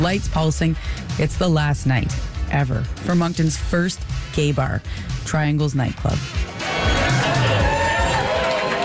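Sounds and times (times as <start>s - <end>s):
speech: 0.0s - 6.5s
packed nightclub crowd chattering and cheering in a basement: 6.5s - 8.8s.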